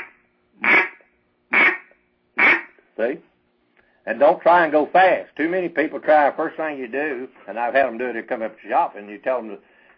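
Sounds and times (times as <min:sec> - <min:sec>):
duck call blown to imitate duck quacking: 0:00.0 - 0:02.8
speech: 0:03.0 - 0:03.3, 0:04.0 - 0:09.7.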